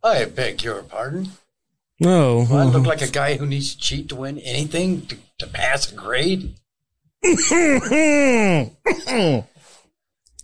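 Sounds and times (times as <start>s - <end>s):
speech: 0.0s - 1.4s, 2.0s - 6.6s, 7.2s - 9.5s
loud exaggerated sneeze: 8.0s - 9.6s.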